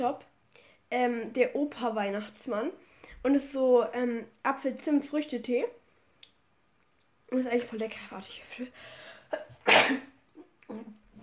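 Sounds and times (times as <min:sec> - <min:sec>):
speech: 0:00.0 - 0:00.3, 0:00.9 - 0:05.8, 0:07.3 - 0:10.1, 0:10.7 - 0:11.0
person sneezing: 0:09.3 - 0:10.2.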